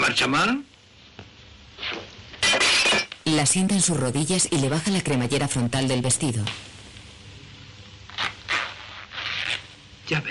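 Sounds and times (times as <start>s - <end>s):
speech: 0.1s - 0.7s, 1.9s - 6.8s, 10.1s - 10.3s
wine glass thrown and shattering: 2.4s - 3.2s.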